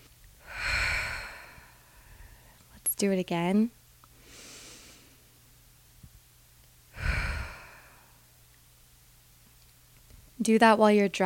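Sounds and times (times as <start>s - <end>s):
deep breath in through the nose during a relaxation exercise: 0.4s - 2.6s, 7.0s - 8.3s
speech: 3.0s - 3.8s, 10.5s - 11.2s.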